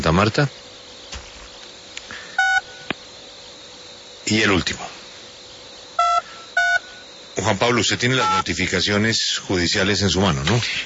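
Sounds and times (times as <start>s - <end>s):
speech: 0.0s - 0.6s, 4.3s - 5.0s, 7.4s - 10.8s
telephone keypad tone while dialing a phone call: 2.4s - 2.9s, 6.0s - 7.1s, 8.2s - 8.5s.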